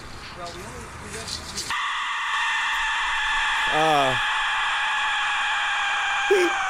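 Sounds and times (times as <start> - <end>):
Aztec death whistle shrieking: 1.7 - 6.6
voice-like wail: 3.1 - 6.6.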